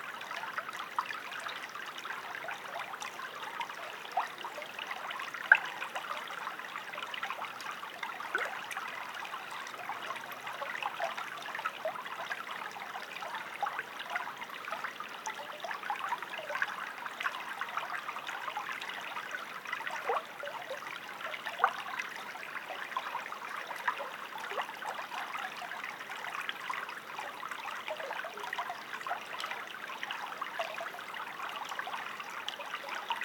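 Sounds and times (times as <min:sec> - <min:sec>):
small creek running over stones: 0:00.0 - 0:33.2.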